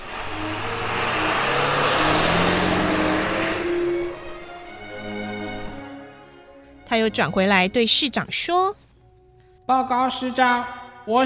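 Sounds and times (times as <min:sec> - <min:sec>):
garbage truck driving away: 0:00.0 - 0:05.9
speech: 0:07.0 - 0:08.8, 0:09.7 - 0:11.2.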